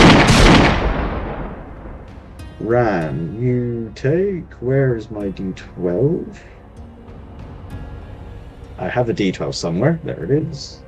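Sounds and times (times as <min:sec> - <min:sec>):
energy guns firing and throwing blue sparks: 0:00.0 - 0:01.7
speech: 0:02.6 - 0:06.5, 0:08.8 - 0:10.8.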